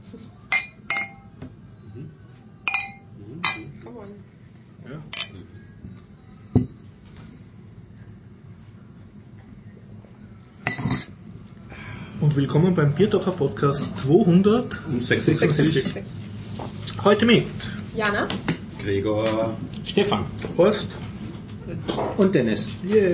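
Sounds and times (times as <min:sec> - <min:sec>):
beer glasses clinking in a toast at a restaurant in Vienna Austria: 0:00.5 - 0:01.3, 0:02.7 - 0:03.8, 0:10.6 - 0:11.2
speech: 0:12.3 - 0:16.3, 0:17.0 - 0:21.0, 0:21.7 - 0:23.1.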